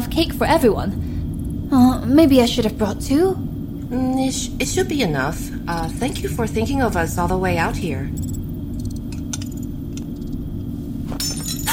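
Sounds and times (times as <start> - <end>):
low rumble: 0.0 - 11.6
speech: 0.2 - 1.1, 1.7 - 8.3
glass breaking and shattering: 11.1 - 11.7
glassy clinks: 11.2 - 11.7.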